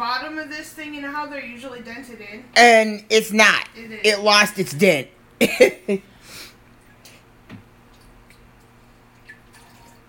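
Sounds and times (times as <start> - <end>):
speech: 0.4 - 6.1
flat root beer being poured: 7.9 - 10.0.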